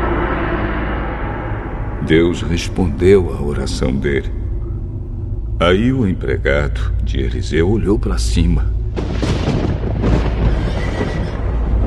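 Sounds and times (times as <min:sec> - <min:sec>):
loud roaring rumble: 0:00.0 - 0:11.8
speech: 0:02.0 - 0:04.4, 0:05.6 - 0:10.2
horses neighing: 0:10.1 - 0:11.8.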